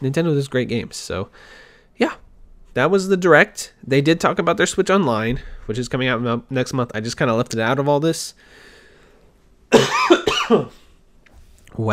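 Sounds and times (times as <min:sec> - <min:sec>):
speech: 0:00.0 - 0:02.2, 0:02.8 - 0:08.7, 0:09.7 - 0:10.8, 0:11.8 - 0:11.9
person coughing harshly: 0:09.7 - 0:10.9.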